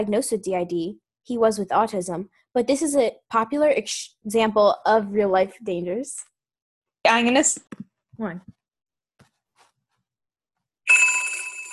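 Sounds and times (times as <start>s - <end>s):
speech: 0.0s - 6.3s, 7.0s - 8.6s
telephone ringing with an incoming call: 10.9s - 11.7s.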